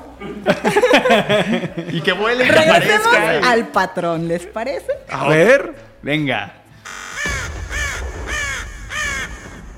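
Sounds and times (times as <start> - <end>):
speech: 0.2 - 6.6
laughter: 0.3 - 3.2
crow cawing: 6.8 - 9.7.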